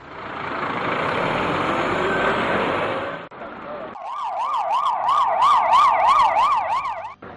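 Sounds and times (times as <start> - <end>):
heavy military truck rumbling past: 0.0 - 3.9
emergency siren wailing: 4.0 - 7.2.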